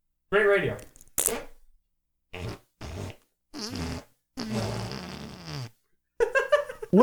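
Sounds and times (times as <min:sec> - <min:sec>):
speech: 0:00.3 - 0:01.4
wet sputtering armpit farts made with a hand and armpit: 0:02.3 - 0:05.8
laughter: 0:06.2 - 0:07.0.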